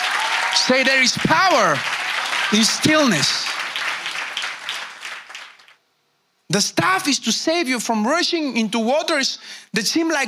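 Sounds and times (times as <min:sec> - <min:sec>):
crowd clapping and cheering: 0:00.0 - 0:05.8
speech: 0:00.6 - 0:03.6, 0:06.5 - 0:10.2.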